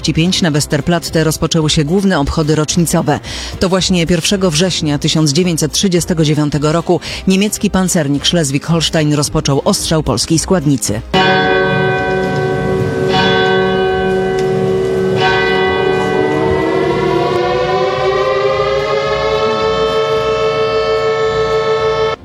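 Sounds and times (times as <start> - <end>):
speech: 0.0 - 11.7
civil defense sirens wailing at a World War II anniversary ceremony at Westerplatte Poland: 11.2 - 22.2
sharp bell-like strikes: 11.2 - 22.2.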